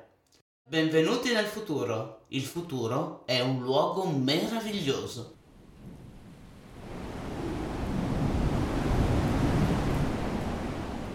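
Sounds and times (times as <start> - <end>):
speech: 0.7 - 5.4
furious wind howling through trees: 5.4 - 11.1.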